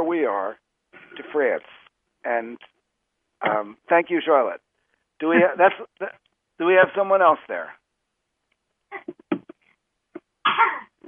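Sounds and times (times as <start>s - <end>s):
speech: 0.1s - 2.8s, 3.4s - 4.6s, 5.2s - 7.8s, 10.4s - 10.9s
baby coughing: 10.4s - 11.0s.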